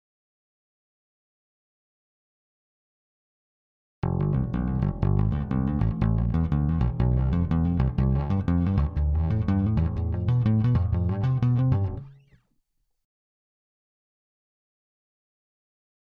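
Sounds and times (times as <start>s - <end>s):
bass shredding: 4.0s - 12.2s.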